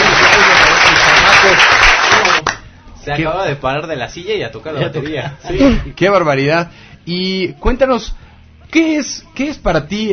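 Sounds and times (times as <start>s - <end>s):
audience applause: 0.0s - 2.5s
speech: 3.1s - 10.1s.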